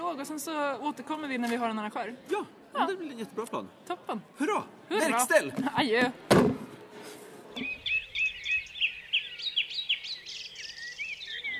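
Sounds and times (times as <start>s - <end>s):
speech: 0.2s - 6.5s
birdsong with chirps and trills: 7.5s - 11.5s.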